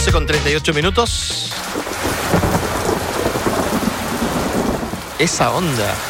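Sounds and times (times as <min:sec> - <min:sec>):
speech: 0:00.1 - 0:02.7, 0:05.2 - 0:06.0
heavy rain pouring down: 0:01.5 - 0:06.0.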